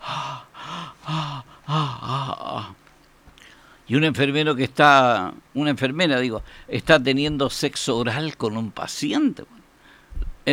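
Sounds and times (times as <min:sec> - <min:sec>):
voice imitating rapid panting gasps: 0:00.0 - 0:02.8
speech: 0:03.9 - 0:09.6.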